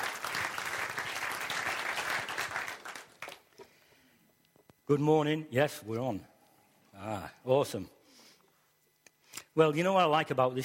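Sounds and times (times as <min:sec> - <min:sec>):
crowd applauding: 0:00.0 - 0:03.5
speech: 0:04.9 - 0:06.3, 0:07.0 - 0:08.0, 0:09.6 - 0:10.6.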